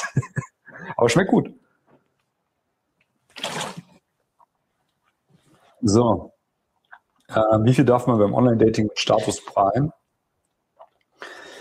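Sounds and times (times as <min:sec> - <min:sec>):
speech: 0:01.0 - 0:01.6, 0:05.8 - 0:06.3, 0:07.3 - 0:10.0
bottled water from Poland sloshing from the bottle: 0:03.2 - 0:04.1
soft rustle: 0:04.6 - 0:05.9.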